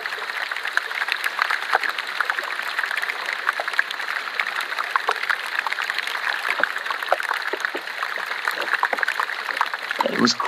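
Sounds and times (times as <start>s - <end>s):
melting glacier ice fizzing and popping in water: 0.0s - 10.4s
speech: 10.2s - 10.4s.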